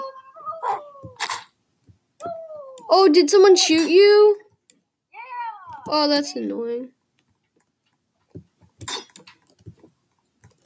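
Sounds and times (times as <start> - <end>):
dog giving high-pitched barks and whining: 0.0 - 1.2
speech: 2.9 - 4.4, 5.9 - 7.0.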